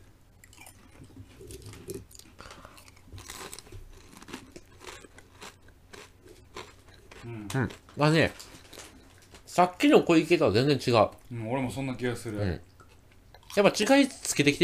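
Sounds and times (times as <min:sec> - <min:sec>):
crunching and chewing of lightly salted potato chips: 0:00.4 - 0:09.6
speech: 0:07.3 - 0:08.4, 0:09.6 - 0:12.7, 0:13.6 - 0:14.6.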